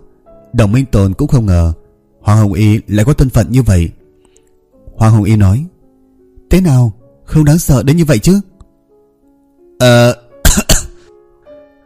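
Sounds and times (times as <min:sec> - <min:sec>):
speech: 0:00.5 - 0:04.0, 0:05.0 - 0:05.7, 0:06.5 - 0:08.5, 0:09.8 - 0:10.2
dry rasping coughs: 0:10.4 - 0:11.1
voiced throat-clearing grunt: 0:10.5 - 0:11.0.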